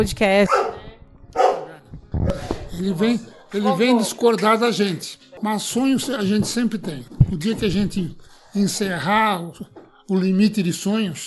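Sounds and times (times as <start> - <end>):
speech: 0.0 - 0.7, 2.8 - 11.2
dog barking: 0.5 - 2.4.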